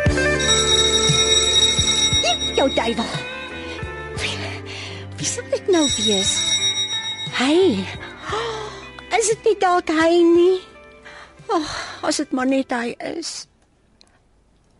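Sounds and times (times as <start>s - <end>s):
front doorbell ringing: 0.2s - 3.9s, 5.6s - 8.3s
speech: 6.1s - 6.4s, 9.5s - 10.7s, 11.6s - 13.5s.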